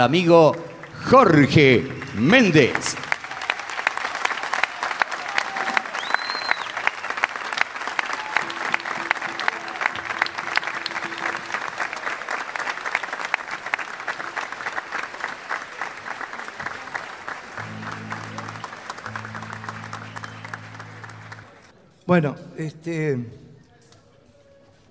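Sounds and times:
speech: 0.0s - 3.0s, 22.2s - 23.4s
crowd applauding a composer, singer and poet: 0.0s - 21.7s
faint tonal hums and low steady tone: 17.6s - 21.7s.

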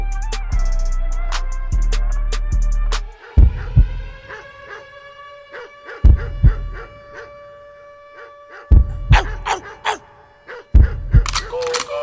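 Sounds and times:
hip hop beat: 0.0s - 4.9s, 5.6s - 7.3s, 8.6s - 12.0s
booming bass kicks: 6.1s - 6.8s, 8.8s - 9.5s, 10.8s - 11.2s.

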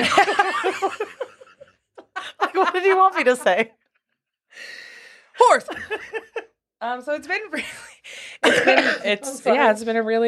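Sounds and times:
laughter: 0.0s - 3.7s, 5.4s - 6.5s, 8.5s - 9.6s
speech: 2.8s - 3.8s, 5.4s - 10.2s
person coughing: 8.4s - 9.2s.

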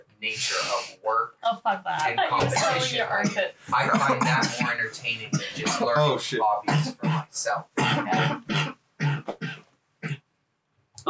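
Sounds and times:
speech: 0.2s - 8.7s
harsh coughing: 2.4s - 10.2s.

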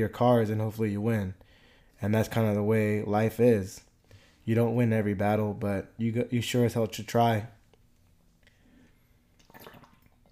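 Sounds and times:
speech: 0.0s - 1.4s, 2.0s - 3.9s, 4.5s - 7.6s
person sipping water: 8.4s - 10.2s
swallowing: 9.3s - 10.2s.

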